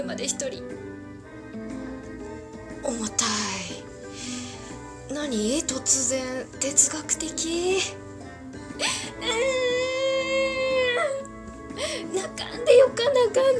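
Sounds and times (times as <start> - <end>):
speech: 0.0 - 0.9, 2.9 - 4.3, 5.1 - 8.0, 12.9 - 13.5
person crying and wailing: 8.8 - 12.8.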